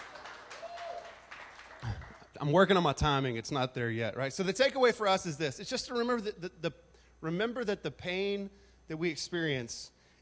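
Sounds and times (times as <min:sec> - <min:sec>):
audience applause: 0:00.0 - 0:02.3
speech: 0:01.8 - 0:10.0.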